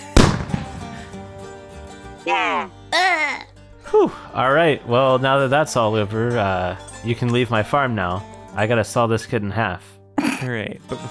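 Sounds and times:
video game gunshot: 0:00.2 - 0:01.2
speech: 0:02.3 - 0:02.8, 0:03.9 - 0:11.0
brief voice-like bursts: 0:02.3 - 0:03.5.

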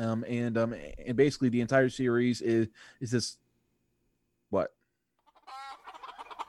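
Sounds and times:
speech: 0:00.0 - 0:03.4, 0:04.5 - 0:04.8
chicken squawking and clucking from a sound-effect button: 0:05.2 - 0:06.4.

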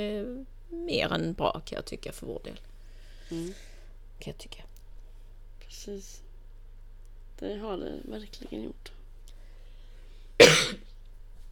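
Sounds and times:
speech: 0:00.0 - 0:02.7, 0:03.3 - 0:04.7, 0:05.7 - 0:06.2, 0:07.4 - 0:09.0
quiet hum: 0:00.0 - 0:11.5
person coughing: 0:10.4 - 0:10.9.

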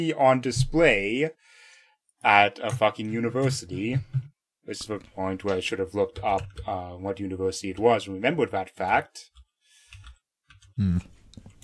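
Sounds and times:
speech: 0:00.0 - 0:01.6, 0:02.2 - 0:09.4, 0:10.8 - 0:11.2
typing on a computer keyboard: 0:05.4 - 0:06.8, 0:09.3 - 0:10.8.

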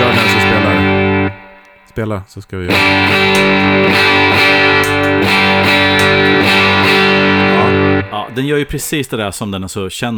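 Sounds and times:
electric guitar strumming chords through a clean boost effects pedal: 0:00.0 - 0:02.0, 0:02.7 - 0:08.6
speech: 0:02.0 - 0:04.2, 0:08.2 - 0:10.1.

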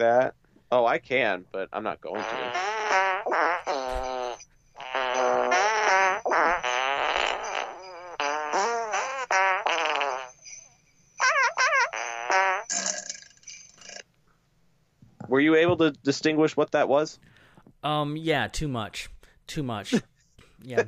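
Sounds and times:
speech: 0:00.0 - 0:02.6, 0:15.3 - 0:20.8
fart noises sound-effect jingle from soundboard button: 0:02.1 - 0:14.1.

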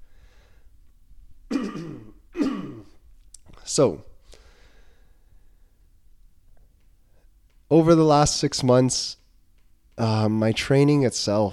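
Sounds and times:
rough throat-clearing coughs: 0:01.5 - 0:03.0
speech: 0:03.7 - 0:04.1, 0:07.8 - 0:09.2, 0:10.0 - 0:11.5.

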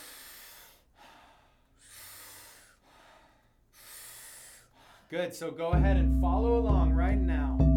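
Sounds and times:
powerful breaths in through the mouth with soft exhales: 0:00.0 - 0:05.2
speech: 0:05.1 - 0:07.6.

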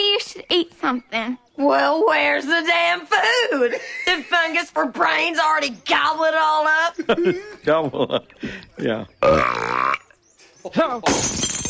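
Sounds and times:
speech: 0:00.4 - 0:10.0, 0:10.6 - 0:11.6
laughter: 0:03.4 - 0:04.4, 0:06.9 - 0:09.0
deep drawn-out burp: 0:09.2 - 0:10.2
thrown glass shattering: 0:11.0 - 0:11.6.

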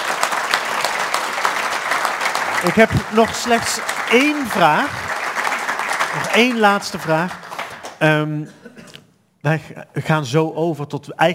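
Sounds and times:
full hall audience clapping at a live literary talk show: 0:00.0 - 0:08.3
speech: 0:02.6 - 0:05.2, 0:06.1 - 0:07.4, 0:08.0 - 0:11.3.

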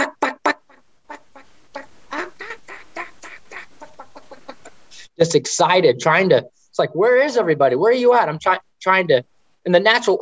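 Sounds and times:
human voice imitating a wild turkey hen's yelping call: 0:00.0 - 0:04.8
speech: 0:05.2 - 0:10.2.

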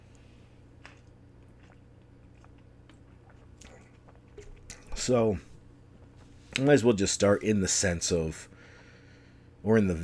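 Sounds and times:
person sipping juice with wet mouth clicks: 0:00.8 - 0:05.0
speech: 0:05.0 - 0:05.5, 0:06.6 - 0:08.5, 0:09.6 - 0:10.0.

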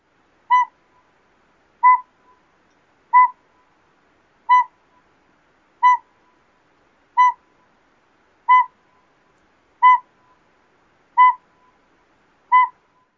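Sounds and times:
northern pygmy owl tooting: 0:00.5 - 0:01.1, 0:01.8 - 0:02.4, 0:03.1 - 0:03.4, 0:04.5 - 0:04.8, 0:05.8 - 0:06.1, 0:07.2 - 0:07.5, 0:08.5 - 0:08.8, 0:09.8 - 0:10.1, 0:11.2 - 0:11.8, 0:12.5 - 0:13.1.

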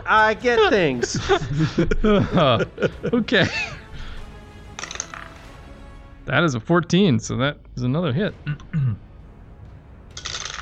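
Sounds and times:
speech: 0:00.1 - 0:03.8, 0:06.3 - 0:09.1
laughter: 0:00.6 - 0:03.9
many dice tumbling across a hard tabletop: 0:04.8 - 0:05.4, 0:10.2 - 0:10.5.

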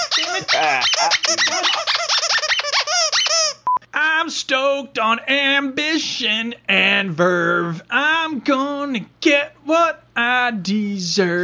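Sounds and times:
dog chewing a rubber squeaky toy: 0:00.0 - 0:03.7
speech: 0:00.4 - 0:02.0, 0:04.4 - 0:11.4.

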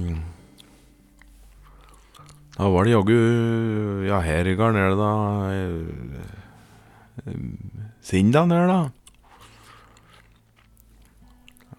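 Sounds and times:
wet chewing of gum: 0:00.0 - 0:02.6, 0:08.8 - 0:11.7
low hum: 0:00.0 - 0:11.7
speech: 0:02.6 - 0:06.3, 0:07.2 - 0:09.0.

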